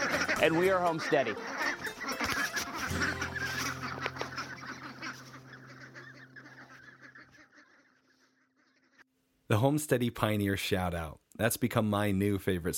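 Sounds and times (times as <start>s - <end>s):
flock of domestic ducks quacking and chattering: 0.0s - 9.1s
speech: 0.4s - 1.6s, 9.5s - 12.7s.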